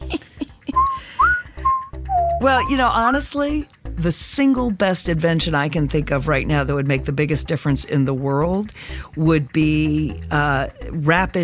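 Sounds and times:
person whistling a jaunty game-show thinking tune: 0:00.7 - 0:02.8
speech: 0:02.4 - 0:11.4.

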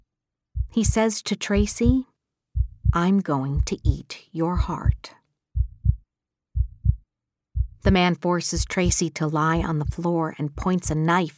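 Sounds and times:
low thumping heartbeat sound effect: 0:00.6 - 0:02.0, 0:02.6 - 0:06.0, 0:06.6 - 0:07.0, 0:07.6 - 0:11.0
speech: 0:00.7 - 0:02.1, 0:02.9 - 0:05.2, 0:07.8 - 0:11.3.

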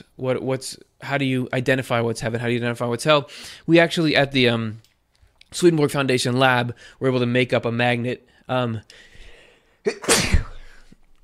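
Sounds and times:
speech: 0:00.0 - 0:04.9, 0:05.5 - 0:09.1, 0:09.8 - 0:10.5
loud sneeze: 0:09.9 - 0:10.9.

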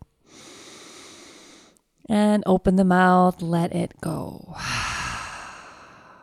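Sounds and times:
long cleansing inhale through the nose: 0:00.2 - 0:01.8, 0:04.6 - 0:06.2
speech: 0:02.1 - 0:04.7.

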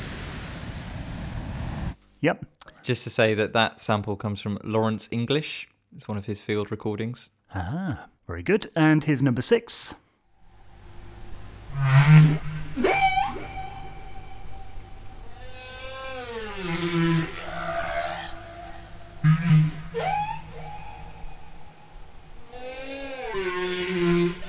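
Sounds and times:
speech: 0:02.2 - 0:10.0
whale calls with gliding moans and high squeals with natural echo: 0:10.6 - 0:24.4.

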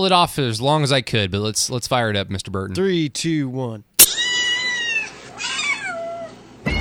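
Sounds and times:
speech: 0:00.0 - 0:03.9
cat meowing: 0:04.0 - 0:06.8.

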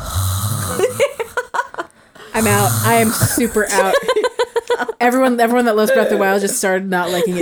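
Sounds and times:
person imitating creepy heavy breathing: 0:00.0 - 0:01.5, 0:02.4 - 0:04.0
laughter: 0:00.6 - 0:05.0
speech: 0:02.4 - 0:04.3, 0:05.0 - 0:07.4.

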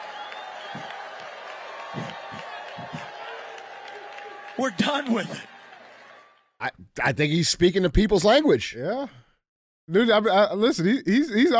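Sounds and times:
people shouting in a crowd: 0:00.0 - 0:05.6
crowd roaring and cheering: 0:00.0 - 0:06.6
speech: 0:04.6 - 0:05.5, 0:06.6 - 0:09.2, 0:09.9 - 0:11.5.

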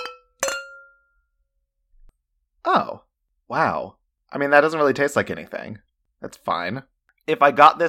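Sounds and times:
glasses clinking in a toast: 0:00.0 - 0:01.0
speech: 0:02.7 - 0:07.8.

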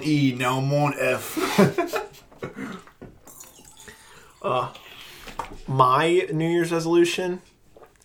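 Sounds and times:
speech: 0:00.0 - 0:01.8, 0:04.4 - 0:04.8, 0:05.7 - 0:07.5
person drinking water: 0:02.2 - 0:05.6, 0:07.7 - 0:08.0
soft sloshing and dripping liquid: 0:02.3 - 0:05.6.

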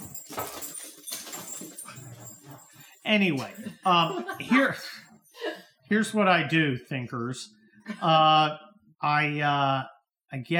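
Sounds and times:
dog barking: 0:00.0 - 0:04.8
laughter: 0:02.0 - 0:05.7
speech: 0:03.1 - 0:05.0, 0:05.9 - 0:10.5.

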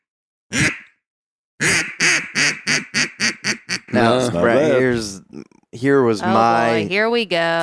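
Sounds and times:
duck call imitating a gadwall duck quacking: 0:00.5 - 0:01.0, 0:01.6 - 0:04.0
speech: 0:04.0 - 0:07.6.

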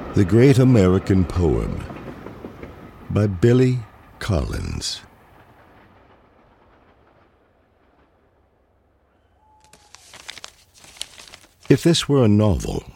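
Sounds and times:
train rolling along the tracks: 0:00.0 - 0:08.7
speech: 0:00.2 - 0:01.9, 0:03.1 - 0:05.1, 0:11.7 - 0:12.9.

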